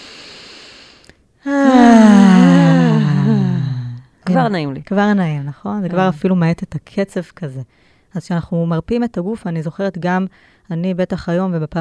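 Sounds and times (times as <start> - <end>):
speech: 1.4 - 2.4, 4.4 - 11.7
deep breath let out as a long voiced sigh: 1.4 - 4.2.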